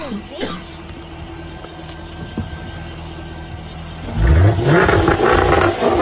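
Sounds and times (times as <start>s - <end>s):
car engine idling: 0.1s - 5.6s
car engine revving: 3.9s - 6.0s.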